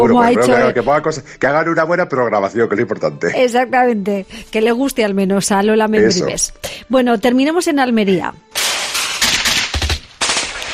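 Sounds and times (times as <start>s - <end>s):
speech: 0.0s - 8.6s
gunfire sound effect: 8.6s - 10.7s.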